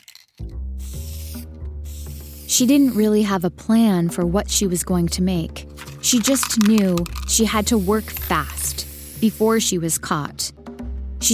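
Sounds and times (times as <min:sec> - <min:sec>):
spray paint can hissing while painting in the street: 0:00.8 - 0:03.2, 0:05.8 - 0:09.7
speech: 0:02.5 - 0:10.6.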